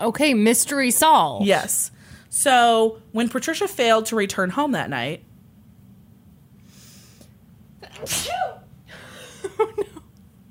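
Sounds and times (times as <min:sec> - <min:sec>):
speech: 0:00.0 - 0:05.3, 0:08.0 - 0:08.3
low hum: 0:00.0 - 0:10.5
sneeze: 0:07.8 - 0:08.7
breathy stifled laughter: 0:09.1 - 0:10.1.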